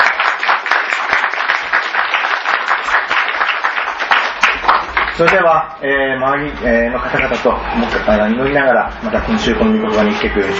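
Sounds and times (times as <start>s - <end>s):
audience applause: 0.0s - 5.4s
speech: 5.2s - 10.5s.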